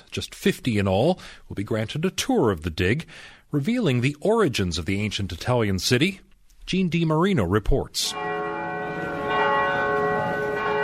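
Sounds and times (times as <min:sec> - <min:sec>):
speech: 0:00.2 - 0:08.3
church bells ringing in Florence near the Palazzo Vecchio: 0:08.1 - 0:10.8.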